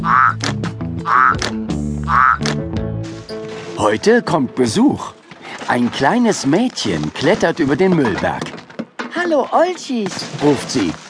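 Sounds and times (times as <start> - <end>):
toads croaking: 0.0 - 2.6
speech: 3.9 - 8.6, 9.2 - 11.0.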